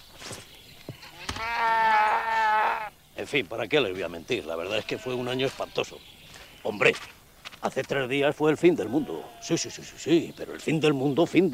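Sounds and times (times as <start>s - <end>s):
sheep bleating: 1.0s - 2.9s, 4.4s - 6.0s, 8.5s - 10.0s
speech: 3.3s - 11.5s.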